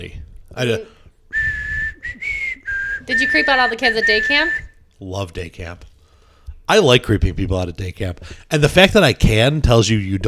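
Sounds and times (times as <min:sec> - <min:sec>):
speech: 0:00.0 - 0:01.0, 0:03.1 - 0:05.9, 0:06.7 - 0:10.2
person whistling a tune: 0:01.3 - 0:04.8.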